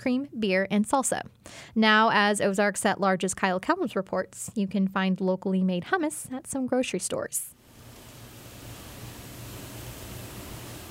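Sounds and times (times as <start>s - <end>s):
speech: 0.0s - 7.6s
freezers and mixers humming in a kitchen: 7.6s - 10.8s.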